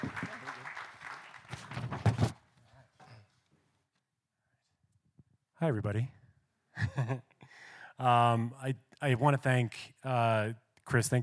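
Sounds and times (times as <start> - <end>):
audience applause: 0.0 - 2.0
speech: 5.6 - 6.2, 6.8 - 7.3, 8.0 - 11.2.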